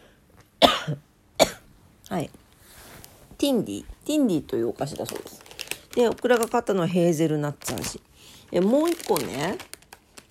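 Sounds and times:
person coughing after choking on chocolate pie: 0.6s - 1.7s
speech: 2.1s - 2.4s, 3.4s - 5.4s, 6.0s - 9.7s.

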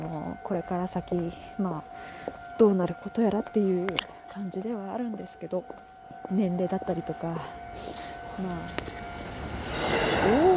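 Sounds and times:
electric train approaching: 0.0s - 10.5s
speech: 0.5s - 9.0s.

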